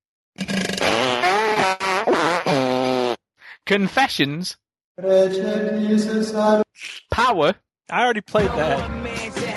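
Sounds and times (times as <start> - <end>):
loud drawn-out buzzy fart sound: 0.4 - 3.2
speech: 3.7 - 9.4.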